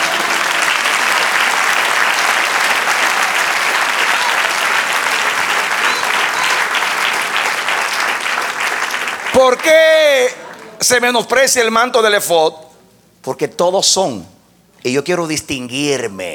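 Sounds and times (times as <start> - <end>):
large crowd applauding: 0.0 - 11.0
speech: 9.4 - 16.3.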